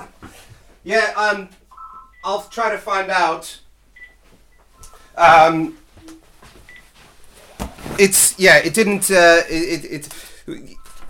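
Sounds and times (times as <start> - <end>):
speech: 0.8 - 1.6, 2.2 - 3.6, 5.2 - 5.8, 8.0 - 10.8
faint phone beeps: 1.7 - 2.6, 4.0 - 6.8, 10.7 - 11.0
phone sounding a short burst of tones: 1.7 - 2.7, 4.0 - 6.8, 10.7 - 11.0.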